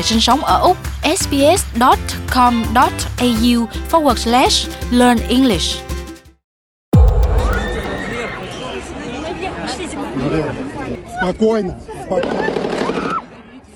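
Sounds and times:
speech: 0.0 - 5.9, 10.3 - 12.5
gunfire in a concert hall: 7.0 - 9.3
many voices shouting and screaming: 7.0 - 9.3.

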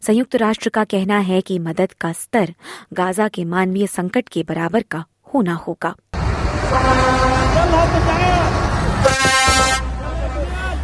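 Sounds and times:
speech: 0.0 - 6.1
engine rumble: 6.2 - 10.8
aid truck horns honking at border crossing: 6.5 - 10.8.

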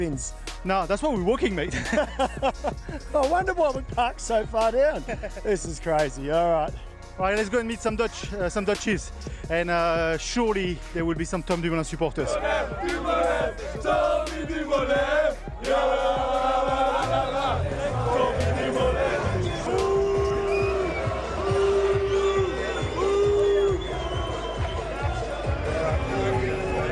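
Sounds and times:
speech: 0.0 - 16.0
laughter: 1.6 - 3.2, 4.8 - 5.6
large crowd jeering and booing: 12.2 - 26.9
people shouting in a crowd: 12.2 - 26.9.

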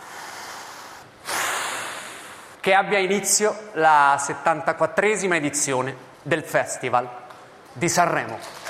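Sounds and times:
large crowd collective exhale: 0.0 - 2.6
speech: 2.6 - 7.2, 7.8 - 8.6.

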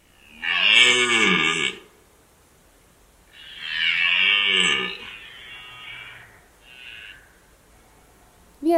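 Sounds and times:
red deer stags bellowing during the rut: 0.0 - 2.0, 3.3 - 8.3.

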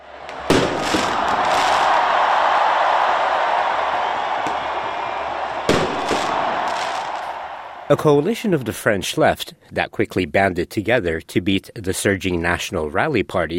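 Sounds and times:
large outdoor crowd cheering: 0.0 - 8.9
sharp firework bangs: 0.2 - 2.6, 4.3 - 7.5
speech: 7.9 - 13.5.

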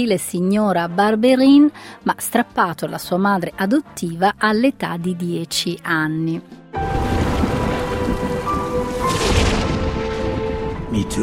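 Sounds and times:
speech: 0.0 - 7.0, 11.0 - 11.2
heavy rain in a thunderstorm: 6.8 - 11.0
rolling thunder: 6.8 - 11.2.

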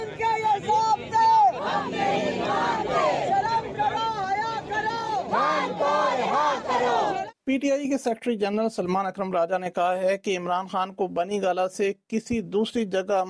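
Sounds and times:
large crowd of political workers chanting slogans loudly: 0.6 - 7.4
speech: 7.5 - 13.2.

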